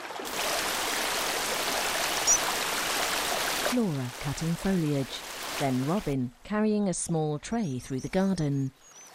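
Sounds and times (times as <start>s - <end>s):
rushing stream water: 0.0s - 6.2s
speech: 3.7s - 8.9s.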